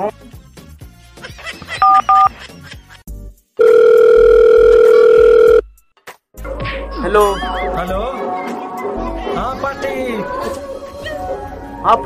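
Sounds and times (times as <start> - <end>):
speech: 0.0 - 0.4, 7.1 - 8.3, 11.8 - 12.0
telephone keypad beeps: 1.8 - 2.3, 3.6 - 5.6
telephone dial tone: 3.6 - 5.6.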